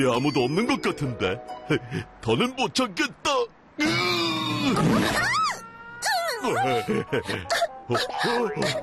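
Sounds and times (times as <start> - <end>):
speech: 0.0 - 5.3, 6.4 - 8.8
person making startled vocal yelps and groaning exclamations: 3.8 - 8.8
loud buzzy cartoon fart: 4.5 - 5.4.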